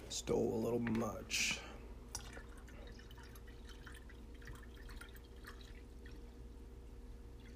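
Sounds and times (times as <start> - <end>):
speech: 0.2 - 1.6
water poured into a glass of pink lemonade: 2.2 - 6.4.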